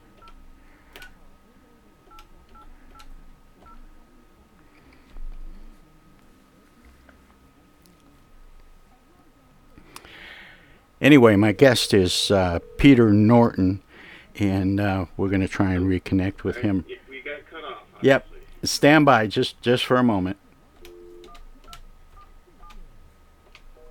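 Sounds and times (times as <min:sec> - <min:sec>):
low murmur: 0:00.0 - 0:18.8, 0:20.1 - 0:23.9
steady hum: 0:00.0 - 0:23.9
telephone keypad tones: 0:00.2 - 0:00.4, 0:20.8 - 0:22.8
speech: 0:11.0 - 0:13.8, 0:14.4 - 0:17.0, 0:18.0 - 0:20.4.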